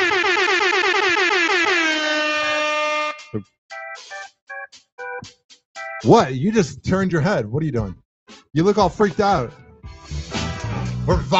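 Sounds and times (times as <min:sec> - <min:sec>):
air horn blast: 0:00.0 - 0:03.4
speech: 0:03.3 - 0:03.5, 0:06.0 - 0:10.2, 0:11.1 - 0:11.3.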